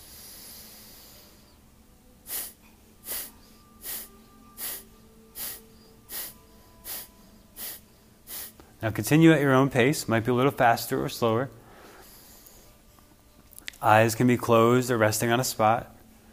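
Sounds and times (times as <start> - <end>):
forceful hissy exhalations during a guided breathwork exercise: 0.0 - 1.6, 2.2 - 8.7, 11.6 - 12.8
soft opening breath in: 0.0 - 1.6, 2.3 - 8.7, 11.6 - 12.8
speech: 8.8 - 11.6, 13.8 - 16.0.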